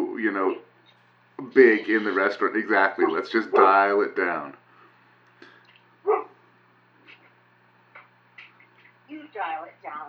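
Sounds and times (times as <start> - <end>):
speech: 0.2 - 0.7, 1.4 - 4.6
puppy barking protectively: 6.0 - 6.4.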